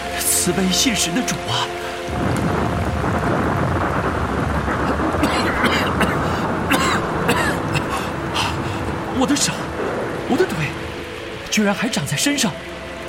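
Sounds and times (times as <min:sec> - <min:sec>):
continuous rumble of thunder: 0:00.0 - 0:13.0
heavy rain pouring: 0:00.0 - 0:13.0
speech: 0:00.4 - 0:02.6, 0:09.2 - 0:09.6, 0:10.3 - 0:10.7, 0:11.6 - 0:12.7
sharp splashes: 0:01.5 - 0:11.5.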